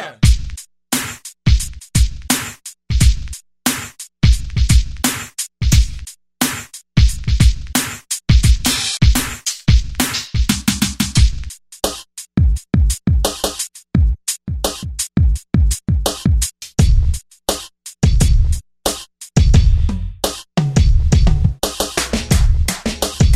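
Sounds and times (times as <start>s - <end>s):
hip hop rap drum kit on a Korg drum machine: 0.2s - 23.3s.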